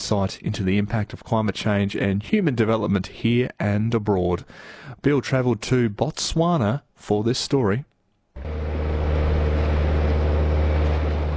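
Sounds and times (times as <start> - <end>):
speech: 0.1 - 8.7
motorboat engine droning while motoring through wetlands: 8.4 - 11.3.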